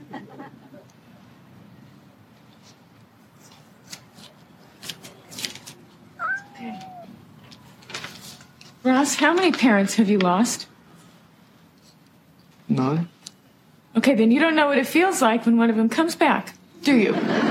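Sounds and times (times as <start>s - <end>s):
cat meowing: 6.2s - 7.2s
speech: 9.0s - 10.7s, 14.0s - 17.4s.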